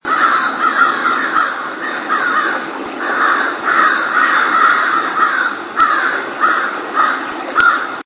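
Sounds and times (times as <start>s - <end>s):
Corvus brachyrhynchos calling: 0.0s - 8.0s.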